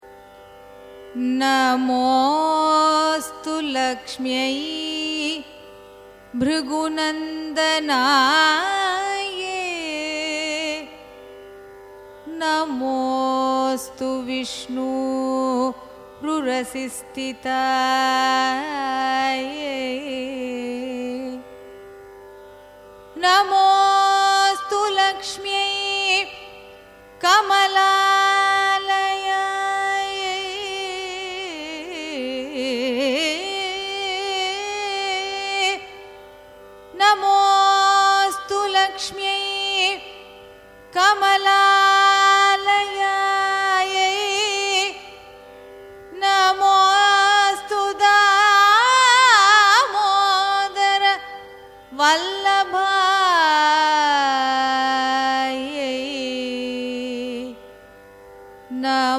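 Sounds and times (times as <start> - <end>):
Carnatic sloka chanting: 0.0 - 59.1.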